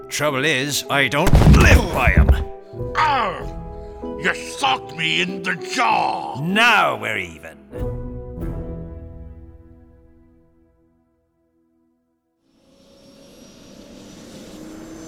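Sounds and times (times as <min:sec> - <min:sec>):
speech: 0:00.1 - 0:07.9
sharp thump: 0:01.2 - 0:02.5
humming drone: 0:12.7 - 0:15.0.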